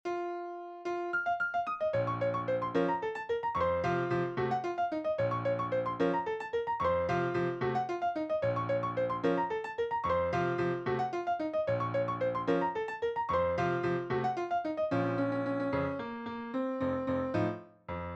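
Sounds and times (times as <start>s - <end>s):
piano piece: 0.1s - 18.1s.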